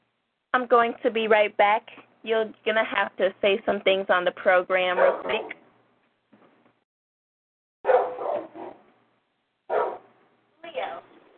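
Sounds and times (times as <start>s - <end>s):
speech: 0.6s - 5.6s
dog barking: 5.0s - 5.6s, 7.8s - 8.8s, 9.7s - 10.1s.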